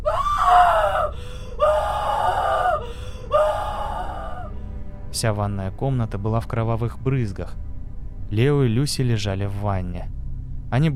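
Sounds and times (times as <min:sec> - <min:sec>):
woman screaming in horror: 0:00.0 - 0:04.5
speech: 0:05.2 - 0:07.7, 0:08.3 - 0:10.9.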